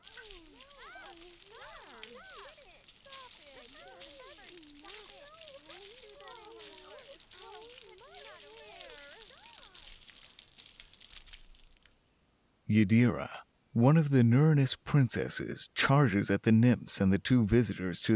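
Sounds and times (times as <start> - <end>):
high squeaky voices chattering and squealing: 0.0 - 10.2
hissing spray of water splashing: 0.0 - 11.9
speech: 12.7 - 18.1.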